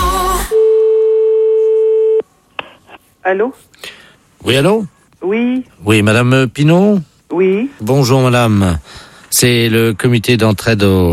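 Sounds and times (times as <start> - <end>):
telephone off-hook tone from a receiver not properly hung up: 0.5 - 2.2
speech: 3.3 - 11.1.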